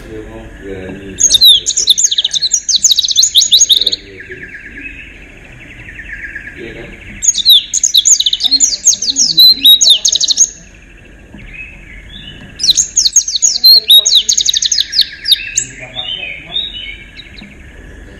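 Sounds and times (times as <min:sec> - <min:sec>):
faint steady hum: 0:00.0 - 0:18.1
white-eye singing chirps and slurred whistles: 0:00.0 - 0:18.1
speech: 0:00.1 - 0:01.9.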